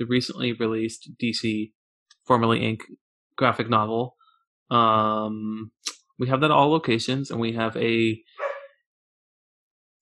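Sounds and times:
speech: 0:00.0 - 0:08.5
dog barking: 0:08.4 - 0:08.8.

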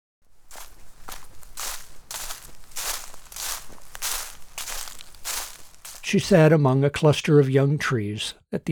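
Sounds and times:
heavy footsteps stomping uphill on rough ground: 0:00.2 - 0:06.3
speech: 0:06.1 - 0:08.6.

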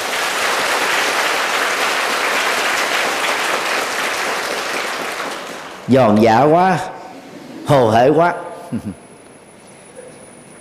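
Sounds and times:
large crowd applauding loudly: 0:00.0 - 0:05.9
speech: 0:05.9 - 0:06.9, 0:07.7 - 0:09.0.

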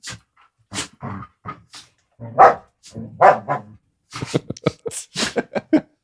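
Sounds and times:
female dog barking: 0:02.3 - 0:03.8
laughter: 0:04.2 - 0:05.9.

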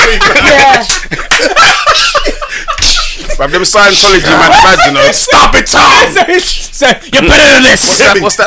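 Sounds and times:
snickering laughter: 0:01.0 - 0:03.4
voice imitating a whip lashing against bare skin: 0:02.8 - 0:03.2
speech: 0:03.4 - 0:08.4.

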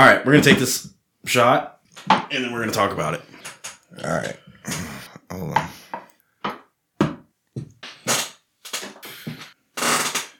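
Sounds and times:
speech: 0:00.0 - 0:05.8
squeaky creaking of an object needing lubrication: 0:09.8 - 0:10.3.

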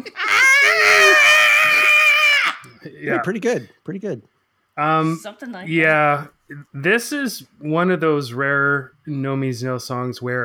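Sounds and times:
raw sustained scream opening a punk song: 0:00.0 - 0:03.2
speech: 0:03.0 - 0:10.4.

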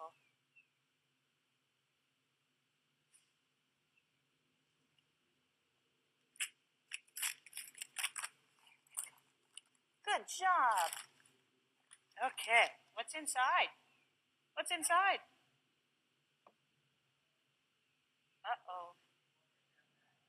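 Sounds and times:
tape peeled from gift wrapping paper as a present is opened: 0:06.4 - 0:08.3
speech: 0:10.2 - 0:11.1, 0:12.2 - 0:13.8, 0:14.6 - 0:15.3.

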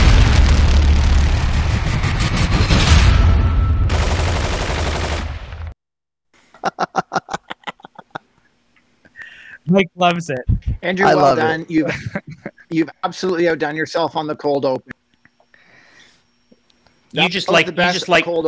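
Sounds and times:
firing squad gunfire volley: 0:00.0 - 0:05.7
laughter: 0:06.6 - 0:08.3, 0:10.4 - 0:13.3, 0:14.3 - 0:15.0, 0:17.3 - 0:18.4
speech: 0:09.7 - 0:14.9, 0:17.1 - 0:18.4.

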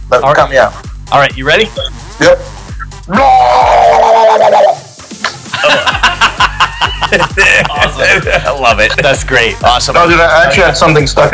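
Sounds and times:
speech: 0:00.2 - 0:04.8, 0:06.8 - 0:11.3
voice imitating a wah-wah effect: 0:02.2 - 0:08.4
laughter: 0:05.5 - 0:09.3.

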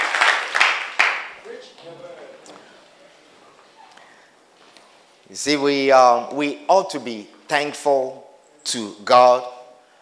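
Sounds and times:
church audience clapping: 0:00.0 - 0:02.0
speech: 0:05.3 - 0:09.5.

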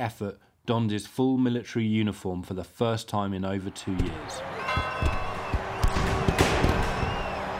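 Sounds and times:
speech: 0:00.0 - 0:05.3
maroon signal guns booming: 0:03.9 - 0:07.4.

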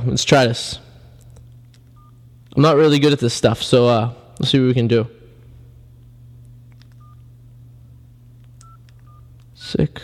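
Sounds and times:
speech: 0:00.0 - 0:00.8, 0:02.6 - 0:05.2, 0:09.7 - 0:10.0
steady low hum: 0:00.0 - 0:10.0
touch-tone dialing on a cell phone: 0:07.0 - 0:07.2, 0:08.6 - 0:09.3.

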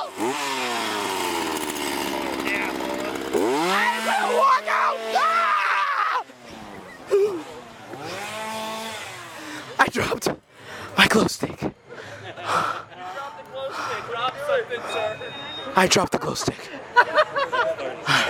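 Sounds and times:
chainsaw engine revving: 0:00.0 - 0:05.6, 0:06.2 - 0:09.8
laughter: 0:03.6 - 0:04.6, 0:11.5 - 0:15.3, 0:16.2 - 0:18.2
person shouting: 0:03.6 - 0:06.2
speech: 0:15.8 - 0:16.7.

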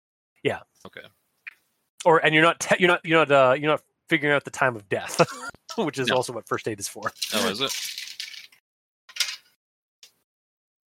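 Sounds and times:
speech: 0:00.4 - 0:01.2, 0:02.0 - 0:08.0
laughter: 0:05.0 - 0:06.3
handful of dice dumped out of a dice tray: 0:07.1 - 0:09.4.

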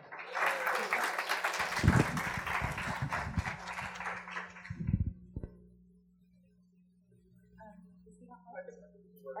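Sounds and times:
audience applauding to welcome a guest speaker: 0:00.0 - 0:04.9.

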